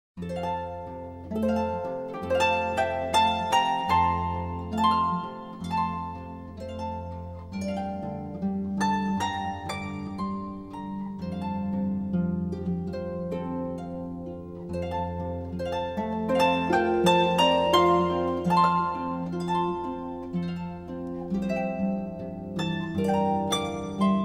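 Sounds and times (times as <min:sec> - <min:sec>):
instrumental harp praise music: 0:00.2 - 0:24.2.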